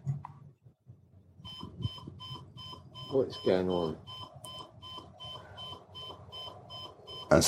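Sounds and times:
alarm clock beeping in high electronic tones: 1.5s - 7.4s
speech: 3.1s - 4.1s.

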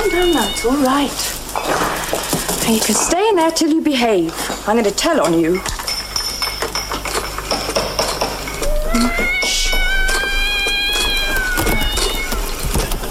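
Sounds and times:
cat yowling: 0.0s - 0.9s, 8.6s - 12.6s
clattering and rustling: 0.0s - 13.0s
speech: 0.2s - 5.8s.

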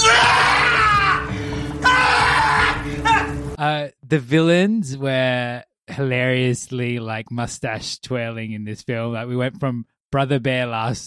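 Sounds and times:
man letting out pained yelping screams in a film: 0.0s - 3.4s
speech: 4.1s - 11.0s.

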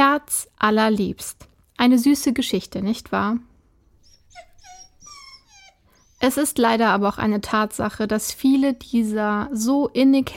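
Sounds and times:
speech: 0.2s - 3.5s, 6.2s - 10.3s
puppy whimpering: 3.9s - 7.1s.

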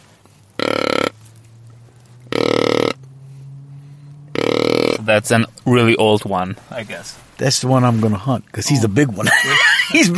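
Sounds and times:
deep buck grunts blown on a deer grunt call with cupped hand: 0.5s - 5.2s
speech: 5.0s - 10.1s
laughter: 9.2s - 10.1s.

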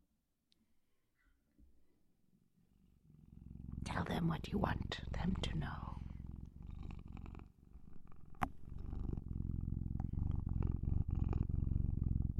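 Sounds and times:
cat purring into the microphone: 2.6s - 12.3s
speech: 4.0s - 6.0s.

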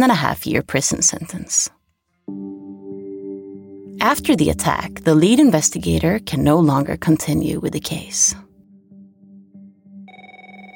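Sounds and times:
speech: 0.0s - 2.5s, 4.0s - 8.4s
telephone ringtone: 9.7s - 10.7s.

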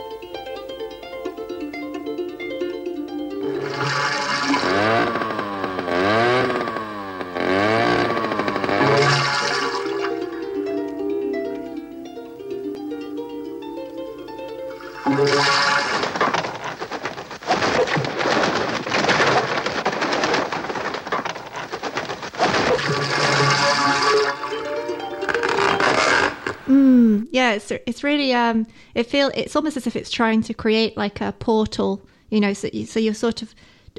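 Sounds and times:
harp music with plucked ringing notes: 0.0s - 16.4s, 23.0s - 26.9s
watery wash: 3.4s - 6.9s, 7.5s - 10.5s, 14.7s - 25.0s
harsh roaring noise like a motorbike revving: 3.4s - 10.6s, 14.9s - 26.7s
speech: 27.7s - 33.9s.

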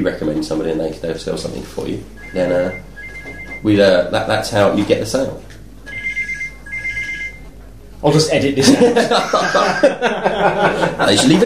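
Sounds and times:
speech: 0.0s - 2.9s, 3.6s - 5.5s, 8.0s - 11.4s
mobile phone ringtone: 2.2s - 3.6s, 5.9s - 7.5s
laughter: 8.6s - 11.4s.

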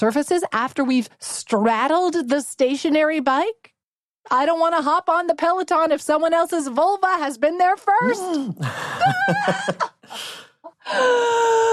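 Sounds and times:
speech: 0.0s - 11.7s
person chuckling: 8.2s - 10.2s
sharp breathy gasp: 10.1s - 11.7s.

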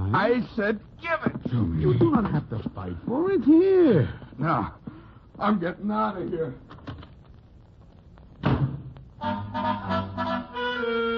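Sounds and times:
speech: 0.1s - 4.8s, 5.4s - 6.8s, 9.2s - 11.1s
door banged shut with a heavy slam as a man leaves: 8.4s - 8.9s.

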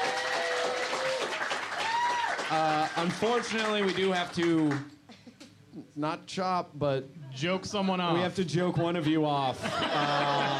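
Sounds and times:
cheers and whistles from audience: 0.0s - 2.4s
room full of people applauding: 0.0s - 4.9s
speech: 2.5s - 5.0s, 5.8s - 10.5s
laughter: 9.0s - 10.5s.

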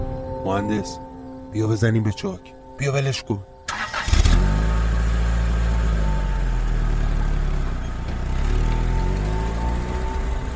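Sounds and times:
speech: 0.4s - 3.5s
car engine cranking and catching: 3.6s - 10.5s.

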